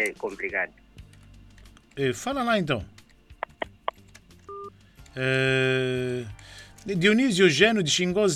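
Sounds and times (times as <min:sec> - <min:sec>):
speech: 0:00.0 - 0:00.9, 0:02.0 - 0:03.0, 0:05.2 - 0:08.3
sharp telephone clicks: 0:03.0 - 0:04.4
two-note telephone beep: 0:04.5 - 0:04.7.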